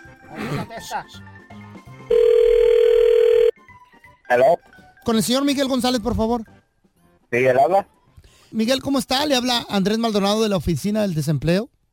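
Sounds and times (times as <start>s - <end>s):
speech: 0.5s - 1.4s, 4.3s - 6.6s, 7.3s - 11.8s
outgoing telephone call ringing tone: 2.1s - 3.6s.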